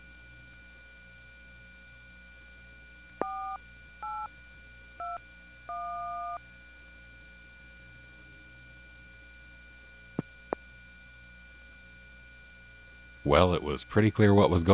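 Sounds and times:
steady low telephone line hum: 0.0 - 14.7
touch-tone dialing on a party telephone line: 3.2 - 4.3, 5.0 - 6.4
speech: 13.3 - 14.7.

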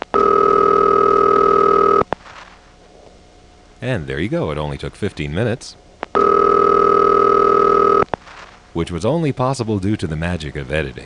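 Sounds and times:
telephone ringing tone through the final switch of a panel telephone switching office: 0.2 - 2.0, 6.2 - 8.1
speech: 3.8 - 6.5, 8.8 - 11.0.

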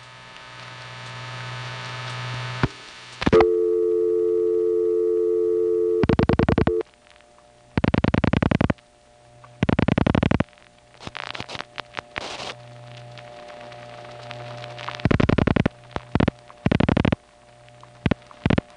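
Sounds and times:
faint hum: 0.0 - 18.7
telephone panel switch sending a steady MF tone: 3.3 - 6.8
rapid evenly spaced revertive pulsing clicks from telephone crosstalk: 7.8 - 8.8, 9.5 - 10.5, 13.2 - 18.7.

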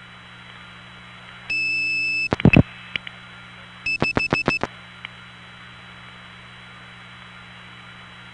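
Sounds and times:
steady telephone tone: 1.5 - 2.6, 3.9 - 4.7
dial pulses clacking through a step tandem switch: 1.5 - 2.7, 3.9 - 4.7.

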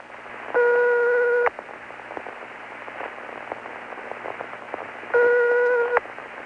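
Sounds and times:
crackly static-filled telephone line: 0.0 - 6.4
Luxembourg telephone ringback tone: 0.6 - 1.5, 5.1 - 6.0.

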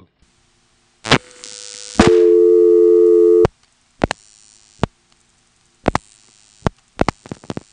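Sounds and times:
telephone line humming with a steady tone: 1.1 - 3.5.

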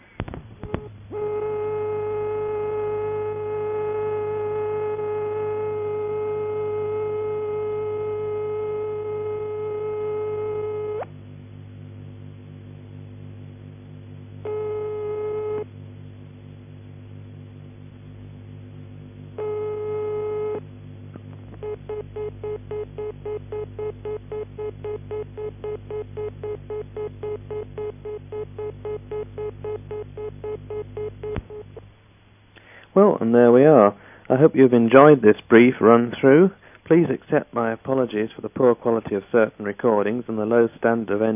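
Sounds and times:
PAX telephone dial tone: 0.6 - 11.1, 14.4 - 15.7, 19.4 - 20.6, 21.4 - 31.8
speech: 33.0 - 41.3.

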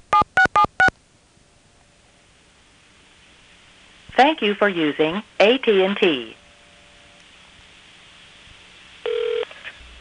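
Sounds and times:
faint hiss: 1.0 - 9.9
speech: 4.2 - 6.4
telephone keypad dialing tone: 9.1 - 9.4.

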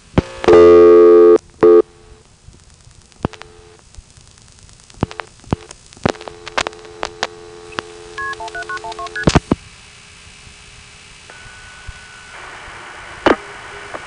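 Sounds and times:
faint telephone line hiss: 0.0 - 14.0
clicks: 3.1 - 3.5, 4.9 - 9.6
telephone keypad tones: 8.2 - 9.3.

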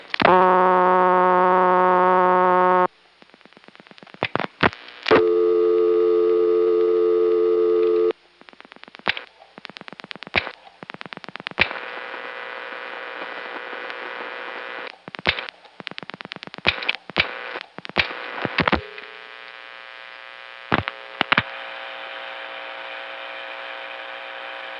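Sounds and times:
telephone line clicks and crackles: 0.0 - 5.4, 6.3 - 22.4
electronic switching system ring tones on a call to a Centrex number: 5.2 - 8.1.

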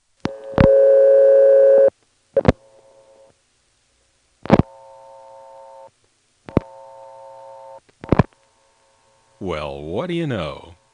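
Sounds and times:
telephone reorder tone on a phone line where a toll-access code is blocked: 0.2 - 3.4, 4.4 - 5.9, 6.5 - 9.4
speech: 9.4 - 10.7.

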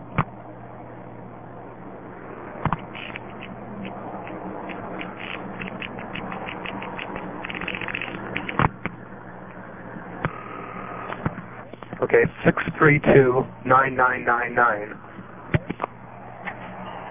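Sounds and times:
steady low hum: 0.0 - 17.1
telephone exchange panel pulsing clicks: 2.6 - 12.8
speech: 12.1 - 15.1.

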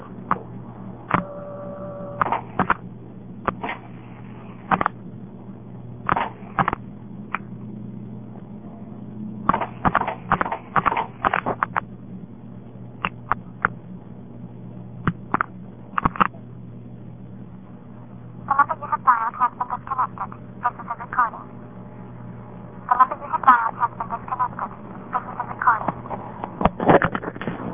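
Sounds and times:
steady low hum of telephone exchange: 0.0 - 27.7
brief telephone exchange tones: 1.1 - 2.3
mechanical telephone exchange equipment clicking out dial pulses: 1.1 - 2.8.

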